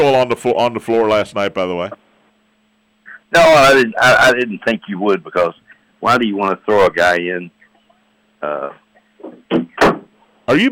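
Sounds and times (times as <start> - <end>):
speech: 0.0 - 2.0, 3.3 - 7.6, 8.4 - 9.5, 10.5 - 10.7
door knocking and banging as it is forced closed: 9.5 - 10.1.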